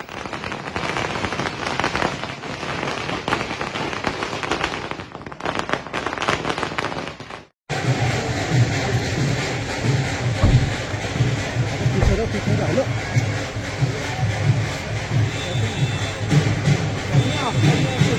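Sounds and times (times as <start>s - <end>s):
firecrackers crackling outside a politician's official government residence in India: 0.0s - 18.1s
low rumbling: 7.8s - 14.0s.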